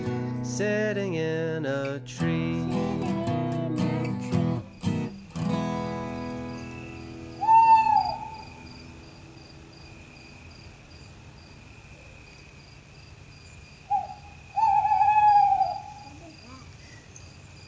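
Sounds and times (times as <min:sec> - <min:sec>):
crickets chirping: 0:00.0 - 0:17.6
speech: 0:00.5 - 0:03.1
owl hooting: 0:06.8 - 0:08.8, 0:13.9 - 0:16.3.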